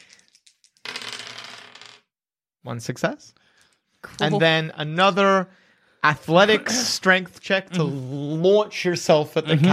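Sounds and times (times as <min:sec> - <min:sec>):
dice tumbling onto a hard tabletop: 0:00.0 - 0:02.1
speech: 0:02.6 - 0:03.4, 0:04.0 - 0:09.7.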